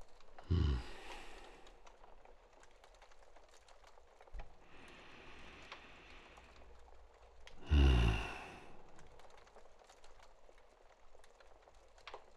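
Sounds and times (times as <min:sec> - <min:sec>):
deep airy breaths and forceful exhales: 0:00.4 - 0:01.9, 0:04.6 - 0:06.9, 0:07.6 - 0:09.3.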